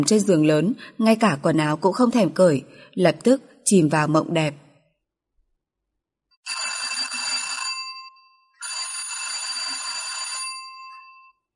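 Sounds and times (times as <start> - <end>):
speech: 0.0 - 4.6
doorbell ringing: 6.4 - 11.5.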